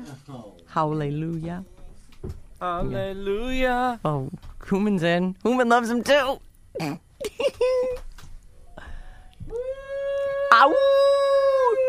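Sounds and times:
speech: 0:00.2 - 0:08.0, 0:10.6 - 0:10.9
dog howling: 0:09.5 - 0:11.8.

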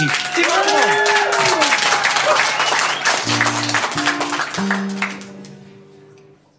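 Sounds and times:
audience cheers and whistles: 0:00.0 - 0:04.8
large audience applauding: 0:00.0 - 0:05.8.

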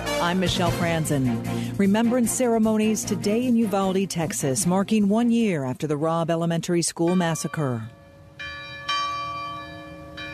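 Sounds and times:
speech: 0:00.2 - 0:08.0
Episcopal church bells ringing at a remembrance ceremony in Uvalde, Texas: 0:07.1 - 0:10.3.

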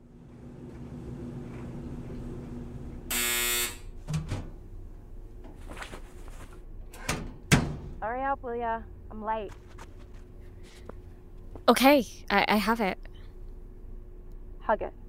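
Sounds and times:
steady low hum: 0:00.0 - 0:15.0
harsh electric buzz: 0:03.1 - 0:04.0
clothes dryer door clunks and clicks: 0:04.0 - 0:04.6, 0:06.9 - 0:08.0
speech: 0:08.1 - 0:09.6, 0:11.7 - 0:13.0, 0:14.7 - 0:15.0.

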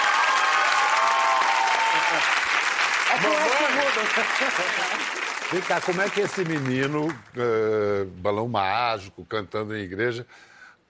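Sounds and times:
audience applause: 0:00.0 - 0:07.4
speech: 0:02.1 - 0:02.4, 0:03.1 - 0:10.5.

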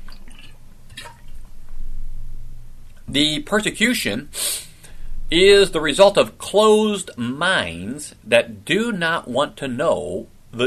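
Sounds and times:
person drinking water: 0:00.0 - 0:01.6
steady low hum: 0:00.0 - 0:10.6
speech: 0:03.1 - 0:04.5, 0:05.3 - 0:10.6.

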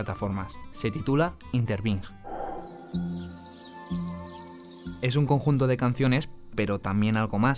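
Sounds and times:
speech: 0:00.0 - 0:02.2, 0:02.9 - 0:04.1, 0:05.0 - 0:07.5
steady musical drone in a popular music song: 0:02.2 - 0:04.0
birds chirping and twittering softly: 0:02.2 - 0:05.5.

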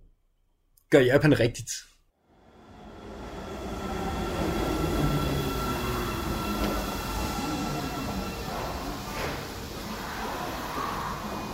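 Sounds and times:
speech: 0:00.9 - 0:01.9
subway train rumbling through an underground metro station: 0:02.3 - 0:11.5.

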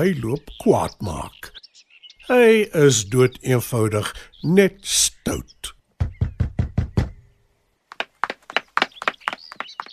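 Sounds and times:
speech: 0:00.0 - 0:01.6, 0:02.3 - 0:06.1
loud heavy knocking on a door: 0:06.0 - 0:07.2.

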